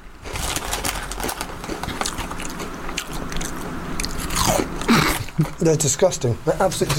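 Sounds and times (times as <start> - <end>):
crinkle-cut chip-shop salt and vinegar crisps crunching between teeth: 0.2 - 5.6
speech: 5.4 - 6.9.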